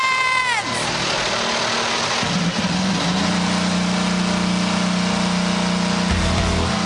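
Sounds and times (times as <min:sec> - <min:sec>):
IndyCar race car engines starting up in Monterey: 0:00.0 - 0:06.8
falling whine of race car engines: 0:05.6 - 0:06.8.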